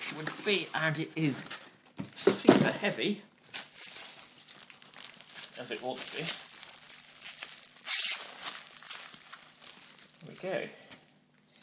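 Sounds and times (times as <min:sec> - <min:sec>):
speech: 0:00.2 - 0:01.6, 0:02.2 - 0:03.3, 0:05.6 - 0:06.4, 0:10.4 - 0:10.8
bubble wrap and cardboard packaging crinkling as it is pulled off: 0:03.4 - 0:11.5
steady papery rustle of packaging: 0:03.5 - 0:11.1.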